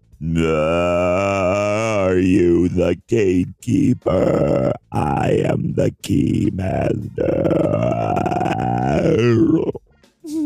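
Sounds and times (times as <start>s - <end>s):
speech: 0.2s - 1.2s, 2.1s - 8.4s
loud guttural burp: 0.2s - 2.4s, 4.0s - 5.6s, 6.6s - 9.8s
person grunting: 0.2s - 9.8s.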